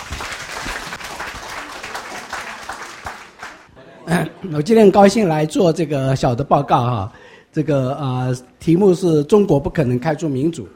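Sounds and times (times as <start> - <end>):
audience applause welcoming a speaker: 0.0 - 3.7
speech: 4.1 - 10.7.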